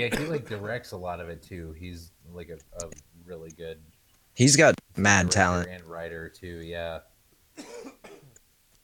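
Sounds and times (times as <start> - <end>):
wet phlegmy cough: 0.0 - 0.7, 7.6 - 8.4
speech: 0.0 - 8.2.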